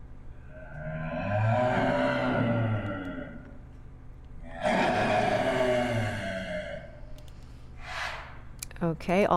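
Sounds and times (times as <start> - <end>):
clouded leopard moaning roar-like calls: 0.5 - 3.6, 4.4 - 7.0
clouded leopard breathy hiss: 7.5 - 8.5
speech: 8.9 - 9.3.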